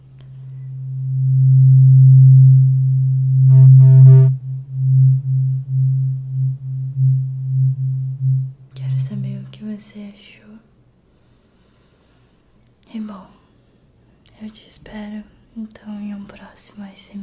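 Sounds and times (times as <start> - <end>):
tuning fork humming with a low pure tone: 0.4 - 9.6
speech: 16.5 - 17.2.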